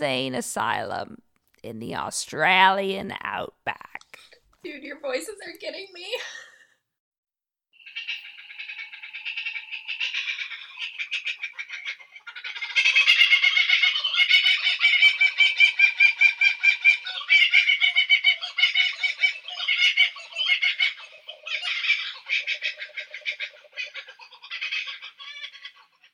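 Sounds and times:
speech: 0:00.0 - 0:06.5
laughing kookaburra call: 0:07.9 - 0:26.1.

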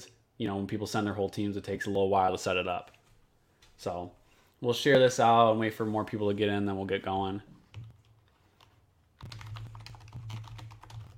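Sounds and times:
speech: 0:00.4 - 0:03.0, 0:03.8 - 0:07.6
rapid clicky computer keyboard typing: 0:07.7 - 0:11.1.

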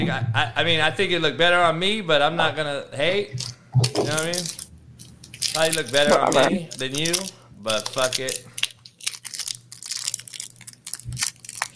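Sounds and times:
speech: 0:00.0 - 0:04.6, 0:05.6 - 0:08.5
faint low hum: 0:00.0 - 0:11.7
person munching crunchy food: 0:03.4 - 0:11.7.

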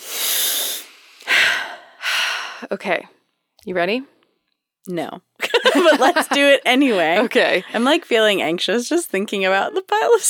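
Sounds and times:
deep breaths taken to steady nerves: 0:00.0 - 0:02.7
speech: 0:02.6 - 0:04.2, 0:04.8 - 0:10.2
laughter: 0:05.4 - 0:07.8.

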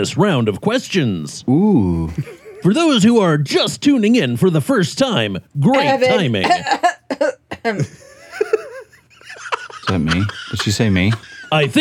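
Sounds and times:
speech: 0:00.0 - 0:08.0, 0:09.9 - 0:11.7
laughter: 0:07.6 - 0:11.7
coughing fit: 0:09.9 - 0:11.4.

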